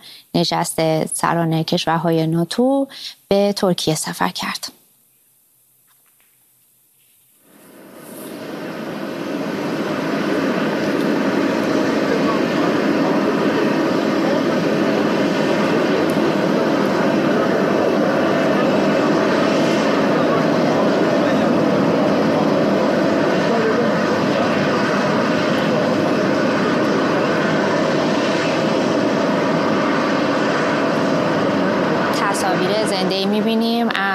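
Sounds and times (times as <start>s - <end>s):
speech: 0.4s - 4.8s
jet airplane engines roaring on the ground after landing: 7.4s - 34.1s.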